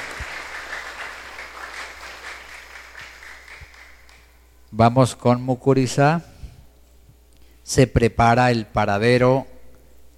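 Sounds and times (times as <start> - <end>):
crowd applauding after a blessing: 0.0 - 4.3
speech: 4.7 - 6.3, 7.7 - 9.5.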